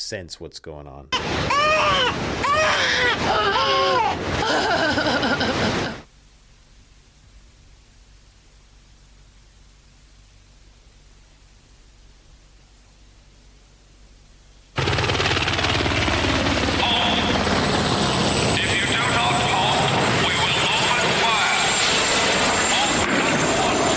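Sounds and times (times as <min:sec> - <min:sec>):
speech: 0:00.1 - 0:06.0
infant screaming and crying: 0:01.2 - 0:04.8
laughter: 0:02.8 - 0:06.0
helicopter engine: 0:14.8 - 0:23.9.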